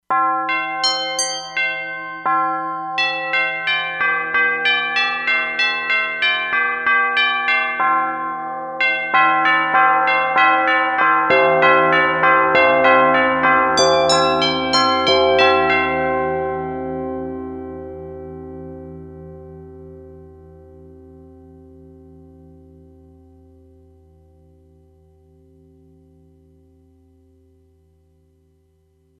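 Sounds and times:
synthesized tubular bells from a sound module preset: 0.5s - 7.8s, 8.8s - 23.2s.

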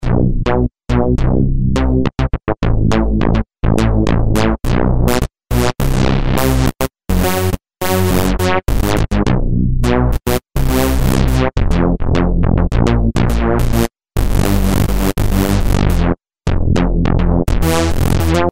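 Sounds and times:
morphing bass: 0.0s - 18.5s.

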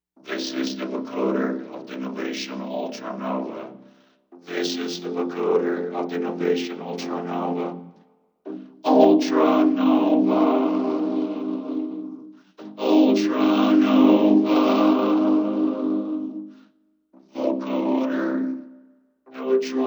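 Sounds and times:
vocoder voice through a Novation UltraNova synthesizer: 0.2s - 16.6s, 17.2s - 18.6s, 19.3s - 19.8s.

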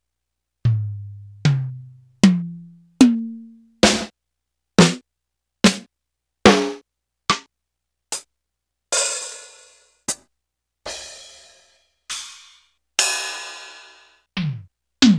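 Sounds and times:
Yamaha PSR-300 keyboard drum sounds: 0.7s - 4.1s, 4.8s - 5.0s, 5.7s - 5.9s, 14.4s - 15.1s.

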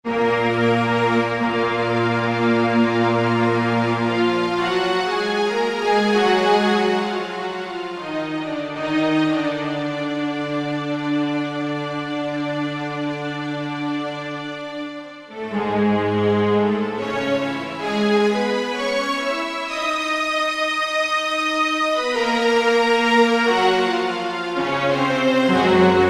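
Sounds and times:
dramatic string music: 0.1s - 26.0s.

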